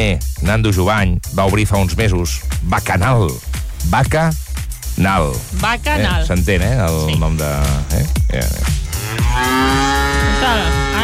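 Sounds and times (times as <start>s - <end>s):
speech: 0.1s - 4.4s, 5.0s - 10.9s
cow mooing: 8.8s - 11.0s.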